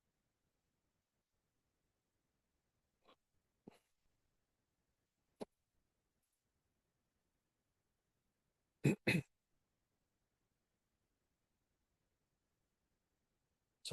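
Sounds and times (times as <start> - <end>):
person hiccuping: 8.8 - 9.3.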